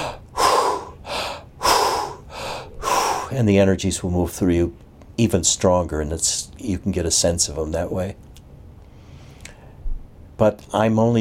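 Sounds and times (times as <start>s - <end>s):
bellows breathing exercise through the nose and mouth: 0.0s - 3.4s
speech: 3.3s - 8.3s, 10.4s - 11.2s.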